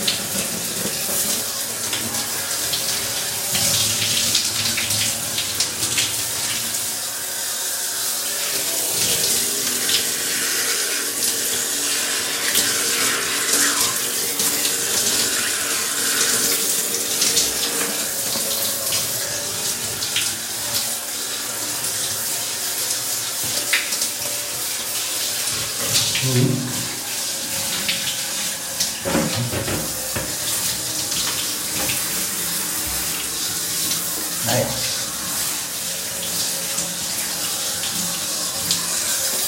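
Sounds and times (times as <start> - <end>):
hot shower water running: 0.0 - 39.4.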